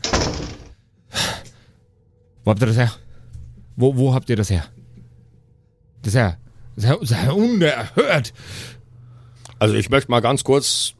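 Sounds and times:
door slamming shut with a heavy bang: 0:00.0 - 0:00.8
speech: 0:02.4 - 0:03.0, 0:03.8 - 0:04.8, 0:06.0 - 0:08.8, 0:09.6 - 0:10.9.

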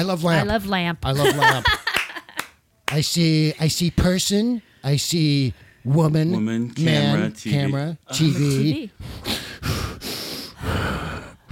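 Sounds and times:
speech: 0:00.0 - 0:01.8, 0:02.9 - 0:09.4
laughter: 0:01.2 - 0:02.5
heavy labored breathing: 0:09.0 - 0:11.5.

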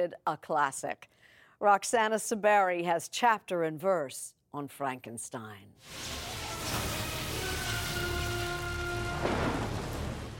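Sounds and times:
speech: 0:00.0 - 0:07.0
steady rain hissing: 0:05.8 - 0:10.3
low rumbling thunder: 0:05.9 - 0:10.3.

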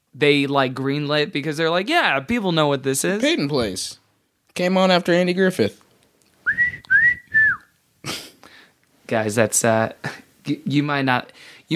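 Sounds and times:
speech: 0:00.2 - 0:04.0, 0:04.6 - 0:05.8, 0:09.1 - 0:11.7
person whistling a short phrase of an old TV theme tune: 0:06.5 - 0:07.7.

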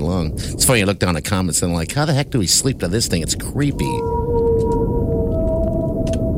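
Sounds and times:
speech: 0:00.0 - 0:04.3
deep rumbling underwater background: 0:00.0 - 0:06.3
whale song: 0:03.6 - 0:06.3.

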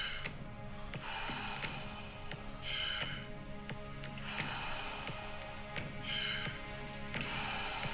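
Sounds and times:
deep circular breathing in and out: 0:00.0 - 0:03.4, 0:04.1 - 0:07.9
soft sustained tonal background: 0:00.0 - 0:07.9.

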